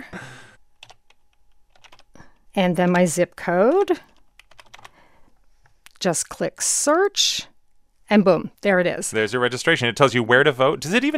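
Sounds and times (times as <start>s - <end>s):
keys tapped on a computer keyboard typing a name and birth date: 0.8s - 2.1s, 3.6s - 4.9s
speech: 2.6s - 4.1s, 6.0s - 7.5s, 8.1s - 11.1s.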